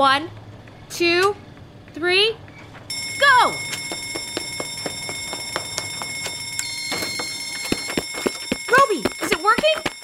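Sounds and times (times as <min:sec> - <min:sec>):
speech: 0:00.0 - 0:01.4, 0:02.0 - 0:02.4, 0:03.2 - 0:03.8, 0:08.9 - 0:09.9
smoke alarm with steady shrill high-pitched tone: 0:02.9 - 0:10.0.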